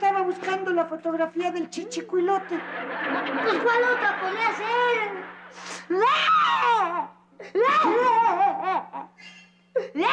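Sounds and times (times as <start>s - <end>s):
speech: 0.3s - 10.1s
laughter: 2.2s - 5.6s, 7.4s - 9.2s
girl crying: 5.8s - 10.1s.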